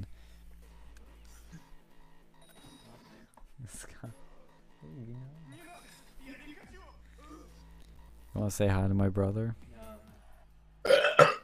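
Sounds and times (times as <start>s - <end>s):
speech: 8.5s - 9.6s
person burping: 10.8s - 11.4s.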